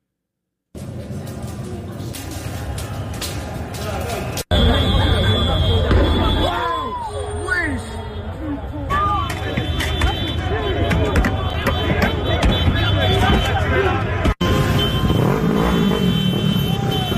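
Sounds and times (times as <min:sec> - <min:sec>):
dense chaotic street riot crowd roaring and shouting: 0:02.5 - 0:15.7, 0:16.5 - 0:17.1
car engines revving and accelerating: 0:13.6 - 0:17.1.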